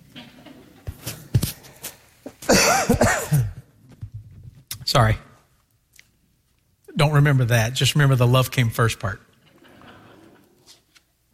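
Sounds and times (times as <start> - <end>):
person coughing with a tickle in the throat: 2.4 - 3.7
speech: 5.0 - 5.3, 7.0 - 9.3.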